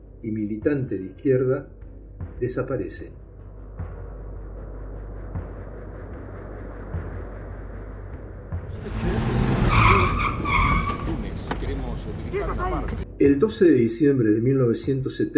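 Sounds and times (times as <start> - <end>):
speech: 0.2 - 1.8, 2.4 - 3.2, 13.2 - 15.3
low car engine rumble: 8.6 - 13.2
tires of cars screeching to a halt: 8.7 - 13.0.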